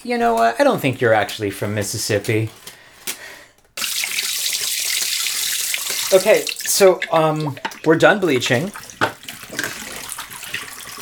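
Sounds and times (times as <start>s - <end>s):
speech: 0.0s - 2.8s, 6.1s - 9.2s
water running and splashing out of a tank after washing: 3.8s - 10.9s.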